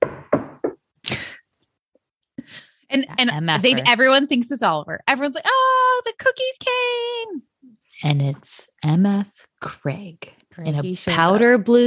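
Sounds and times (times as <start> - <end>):
firm knocks on a door: 0.0 - 0.8
thud: 0.0 - 0.8
speech: 2.9 - 11.8.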